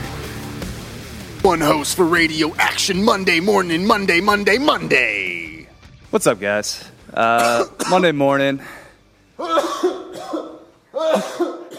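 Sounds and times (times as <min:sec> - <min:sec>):
speech: 0:01.4 - 0:05.3, 0:06.1 - 0:08.8
heavy rasping coughing: 0:07.2 - 0:08.1, 0:09.4 - 0:11.7.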